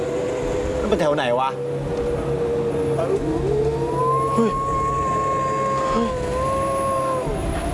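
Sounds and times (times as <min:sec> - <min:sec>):
steady hum: 0:00.0 - 0:07.7
speech: 0:00.9 - 0:02.0, 0:03.0 - 0:03.7, 0:04.4 - 0:04.7
dog howling: 0:02.4 - 0:07.7.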